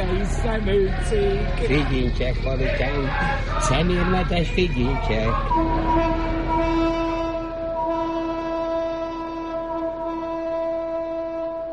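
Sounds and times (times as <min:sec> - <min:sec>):
speech: 0:00.1 - 0:06.2
train horn blaring in one long chord: 0:04.5 - 0:11.7.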